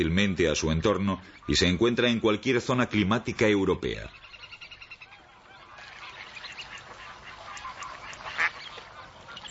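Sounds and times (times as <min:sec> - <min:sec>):
speech: 0:00.0 - 0:04.2
mallard ducks quacking: 0:00.5 - 0:02.2, 0:03.8 - 0:09.4.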